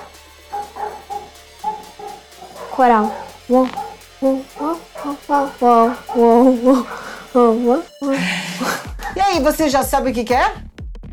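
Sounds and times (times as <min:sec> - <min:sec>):
dog yapping with short high-pitched barks: 0:00.0 - 0:08.0
speech: 0:02.8 - 0:10.6.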